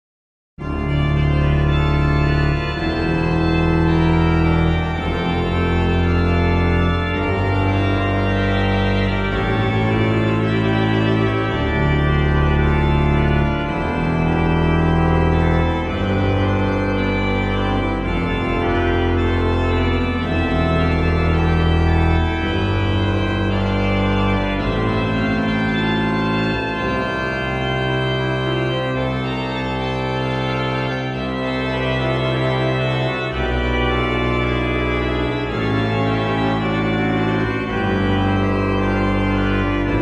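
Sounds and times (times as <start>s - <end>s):
organ piece played in the bass: 0.6s - 40.0s.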